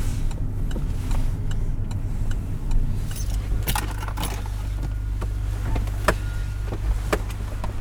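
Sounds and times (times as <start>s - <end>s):
car engine humming as the vehicle slows: 0.0s - 7.7s
keys jingling: 3.0s - 5.2s.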